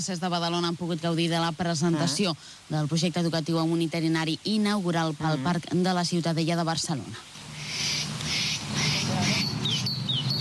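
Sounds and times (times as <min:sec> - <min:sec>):
speech: 0:00.0 - 0:08.0
birds chattering in a park: 0:07.6 - 0:10.3.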